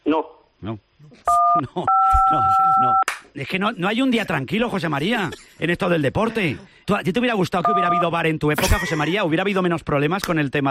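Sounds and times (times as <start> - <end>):
speech: 0.1 - 10.6
electronic telephone beeps in a telephone call: 1.3 - 3.0, 7.6 - 8.1.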